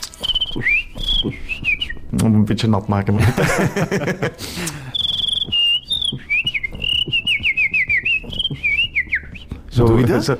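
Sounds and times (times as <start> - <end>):
person whistling a high-pitched tune: 0.2 - 2.0, 4.8 - 9.7
speech: 2.2 - 4.8, 9.8 - 10.3
laughter: 3.2 - 4.6.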